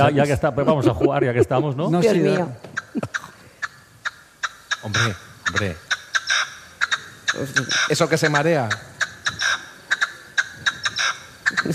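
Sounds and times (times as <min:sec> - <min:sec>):
speech: 0:00.0 - 0:03.3, 0:04.8 - 0:05.8, 0:07.4 - 0:08.9
laughter: 0:00.0 - 0:03.4
partridge calling: 0:02.4 - 0:11.7.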